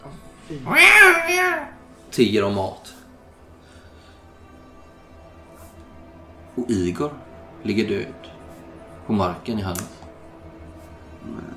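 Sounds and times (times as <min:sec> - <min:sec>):
speech: 0:00.5 - 0:03.0, 0:06.6 - 0:08.3, 0:09.1 - 0:10.0, 0:11.2 - 0:11.5
hungry cats meowing for food: 0:00.7 - 0:01.8.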